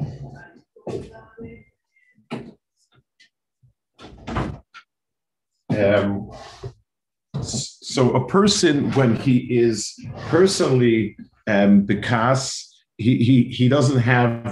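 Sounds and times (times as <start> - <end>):
speech: 0.9 - 1.5, 5.8 - 6.5, 7.4 - 14.4
door being closed: 4.0 - 4.8.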